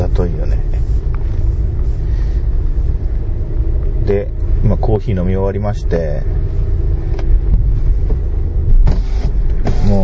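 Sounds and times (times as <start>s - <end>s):
car engine idling in a fast-food drive-through line in Niigata Prefecture: 0.0s - 10.0s
speech: 4.9s - 6.7s.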